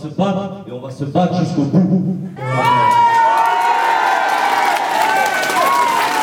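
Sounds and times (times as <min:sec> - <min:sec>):
speech: 0:00.0 - 0:03.1
large crowd of workers cheering and shouting at union rally: 0:02.4 - 0:06.2
rising whoops: 0:02.4 - 0:06.2
scattered clapping: 0:03.2 - 0:06.2.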